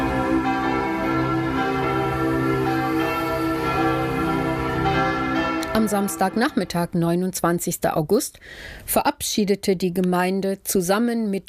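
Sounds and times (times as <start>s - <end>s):
several church bells ringing: 0.0s - 7.2s
speech: 5.8s - 11.4s.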